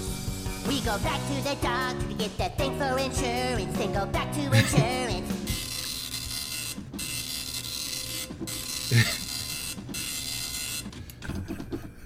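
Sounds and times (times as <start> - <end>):
speech: 0.7 - 5.4, 8.9 - 9.2
dot matrix printer printing: 5.5 - 11.6.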